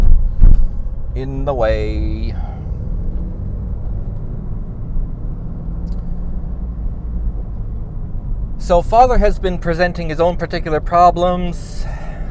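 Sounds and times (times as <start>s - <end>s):
car engine drone at highway speed in fourth gear: 0.0s - 12.2s
road rumble: 0.0s - 12.2s
speech: 1.2s - 2.6s, 8.7s - 12.1s.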